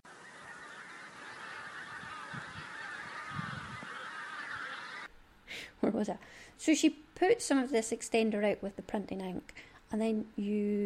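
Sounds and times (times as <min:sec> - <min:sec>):
flock of geese honking: 0:00.0 - 0:05.1
speech: 0:05.8 - 0:10.8.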